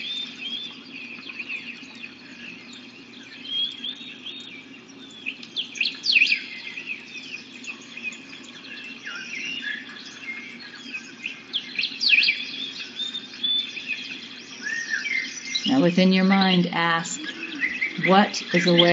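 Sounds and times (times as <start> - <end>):
many birds chirping and singing: 0.0 - 18.9
steady low hum: 0.0 - 18.9
speech: 15.8 - 17.3, 18.0 - 18.9.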